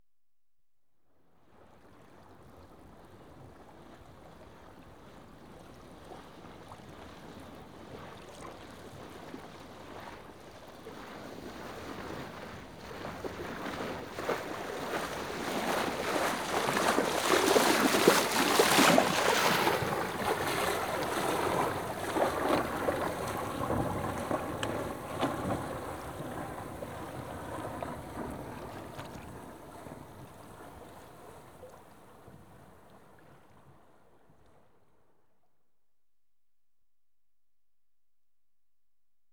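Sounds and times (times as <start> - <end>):
sailing dinghy sailing past left: 5.1 - 33.8.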